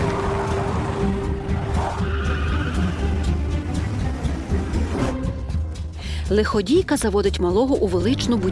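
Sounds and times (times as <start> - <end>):
skidding car tires screeching: 0.0 - 4.5
racing car engine roaring: 0.0 - 5.1
speech: 6.3 - 8.5.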